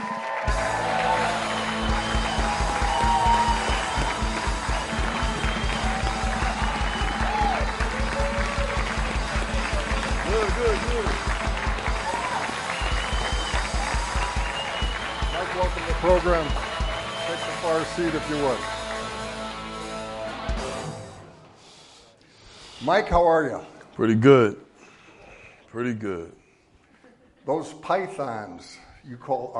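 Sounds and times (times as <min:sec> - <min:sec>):
whoops and cheers from studio audience: 0:00.0 - 0:10.0, 0:11.0 - 0:17.8
studio audience applause welcoming a football player as guest of a live show: 0:00.0 - 0:20.8
speech: 0:18.0 - 0:18.8, 0:22.9 - 0:24.6, 0:25.7 - 0:26.4, 0:27.4 - 0:29.5.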